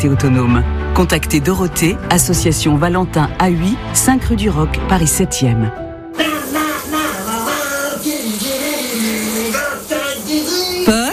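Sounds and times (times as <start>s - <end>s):
speech: 0.0s - 6.3s
person singing loudly: 6.2s - 11.1s
shower water running: 6.2s - 11.1s.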